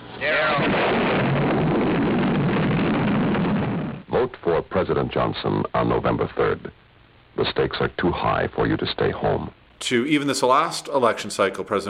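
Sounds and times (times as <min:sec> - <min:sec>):
speech: 0:00.2 - 0:01.0, 0:04.8 - 0:06.8, 0:07.4 - 0:11.8
nuclear explosion roaring rumble: 0:00.4 - 0:04.1.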